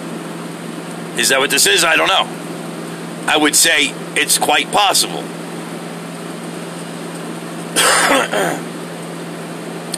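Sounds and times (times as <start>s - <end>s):
speech: 1.2s - 2.5s, 3.3s - 5.4s, 8.2s - 8.7s
person clearing throat: 7.8s - 8.7s.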